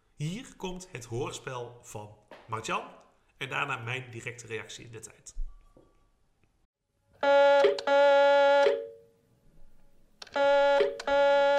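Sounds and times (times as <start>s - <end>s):
speech: 0.2s - 5.5s, 7.2s - 8.8s
loud electronic alarm ringing in buzzing harmonic bursts: 7.2s - 9.0s, 10.3s - 11.5s.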